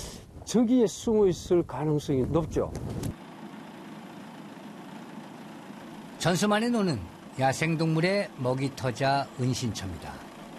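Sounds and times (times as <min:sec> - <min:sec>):
speech: 0:00.5 - 0:03.0, 0:06.2 - 0:10.3
tractor engine harvesting rice in a paddy field: 0:03.1 - 0:10.5.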